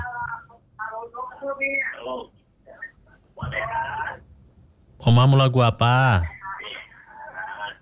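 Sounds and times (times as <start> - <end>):
speech: 1.4 - 2.4, 5.0 - 6.4
voices from a radio over a phone line: 5.0 - 6.3.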